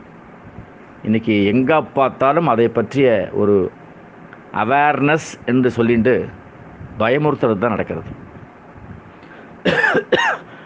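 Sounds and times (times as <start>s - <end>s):
speech: 1.0s - 3.8s, 4.5s - 6.4s, 7.0s - 8.2s
harsh coughs: 9.6s - 10.6s.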